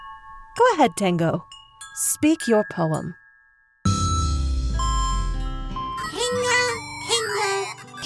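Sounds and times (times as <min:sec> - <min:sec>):
speech: 0:00.6 - 0:03.2
chimes ringing: 0:03.9 - 0:07.9.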